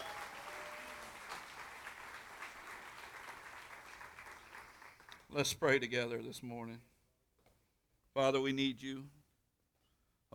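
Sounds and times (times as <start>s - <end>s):
crowd applauding in a large room: 0.0s - 5.3s
speech: 5.3s - 6.9s, 8.2s - 9.2s.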